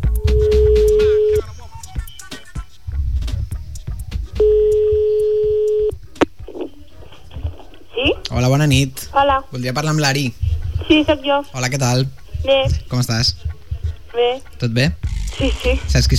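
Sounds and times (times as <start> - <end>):
rumbling busy background: 0.2 - 16.1
long telephone ringback tones during an outgoing call: 4.4 - 5.9
speech: 8.6 - 13.4, 14.2 - 16.1.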